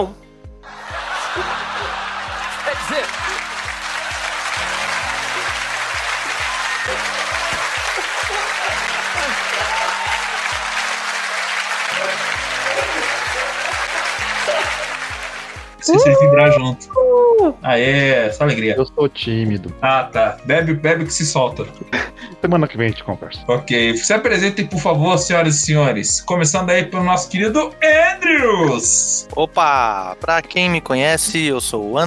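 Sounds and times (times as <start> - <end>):
speech: 0.0 - 0.2, 15.8 - 32.0
crowd laughing: 0.6 - 16.6, 21.9 - 22.5
audience cheering and applauding: 0.6 - 16.8
whoops from crowd: 3.2 - 10.9, 15.8 - 17.6.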